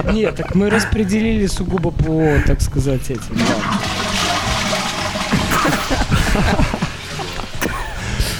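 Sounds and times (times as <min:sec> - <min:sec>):
people laughing: 0:00.0 - 0:01.2, 0:05.2 - 0:08.3
speech: 0:00.0 - 0:04.0, 0:05.9 - 0:06.8
toilet flushing: 0:03.2 - 0:08.1.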